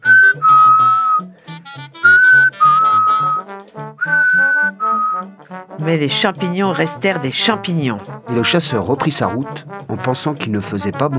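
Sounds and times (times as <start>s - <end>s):
whistled melody of long sustained notes: 0.0s - 5.4s
speech: 5.9s - 11.1s.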